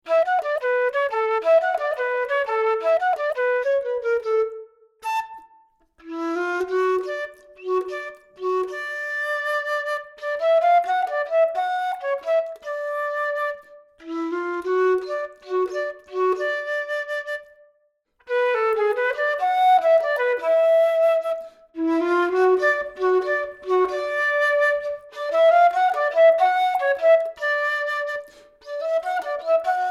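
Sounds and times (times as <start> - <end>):
flute melody: 0.0 - 29.9.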